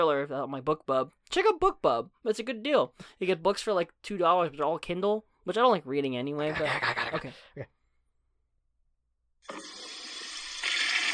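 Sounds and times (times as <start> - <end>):
speech: 0.0 - 7.8, 9.5 - 9.9
toilet flushing with a rush of water: 9.4 - 11.1.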